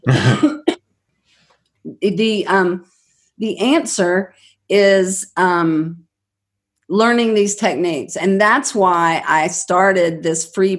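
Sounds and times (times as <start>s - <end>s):
person coughing: 0.0s - 0.8s
speech: 0.1s - 0.6s, 1.8s - 6.0s, 6.9s - 10.7s.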